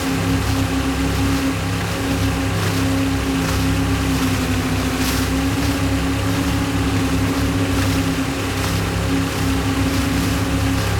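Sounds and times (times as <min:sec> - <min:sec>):
boat: 0:00.0 - 0:10.9.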